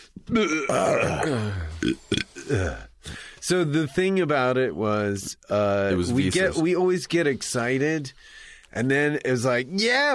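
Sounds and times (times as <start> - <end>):
short vocal grunts and bursts: 0.2 - 3.1
speech: 0.2 - 10.1
loud rumbling burp: 0.3 - 2.9.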